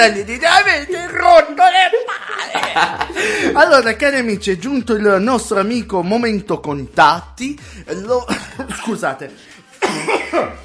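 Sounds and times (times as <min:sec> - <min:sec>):
speech: 0:00.0 - 0:10.6
laughter: 0:01.9 - 0:03.6, 0:08.2 - 0:08.9
harsh throaty coughing fit: 0:08.2 - 0:09.0, 0:09.8 - 0:10.6.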